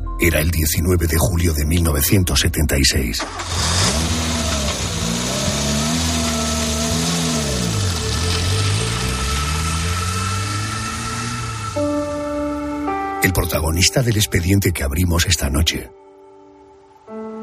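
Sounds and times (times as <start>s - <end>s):
speech: 0.2s - 4.2s, 13.7s - 16.0s
car engine revving and accelerating: 3.2s - 13.1s.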